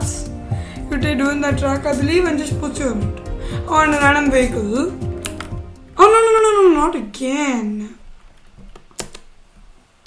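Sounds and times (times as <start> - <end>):
speech: 1.0 - 5.0, 6.0 - 8.0
computer keyboard arrow keys tapped navigating racing game menus: 5.1 - 5.6.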